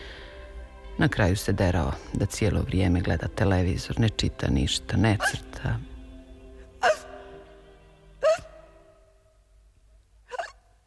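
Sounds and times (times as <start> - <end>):
speech: 1.0 - 5.9
hiccups: 6.8 - 7.2, 8.2 - 8.7, 10.2 - 10.7.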